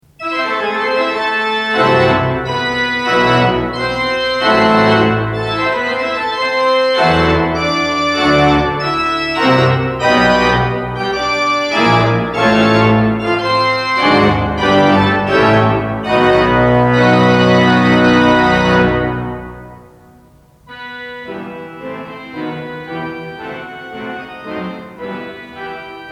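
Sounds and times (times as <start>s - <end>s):
French organ music: 0.0s - 26.0s.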